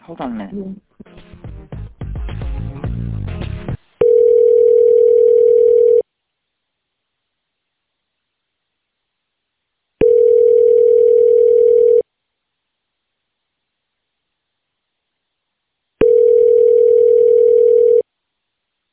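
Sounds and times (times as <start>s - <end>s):
phone dialing noise: 4.0s - 6.0s, 10.0s - 12.0s, 16.0s - 18.0s.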